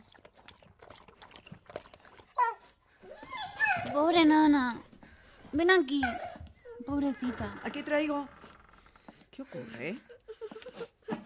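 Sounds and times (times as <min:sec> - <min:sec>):
dog lapping milk from a bowl: 0:00.0 - 0:04.7
dog making short whiny voice-like sounds: 0:02.4 - 0:04.2, 0:05.9 - 0:07.5
speech: 0:04.0 - 0:04.9, 0:05.5 - 0:06.3, 0:06.9 - 0:08.4, 0:09.4 - 0:10.1.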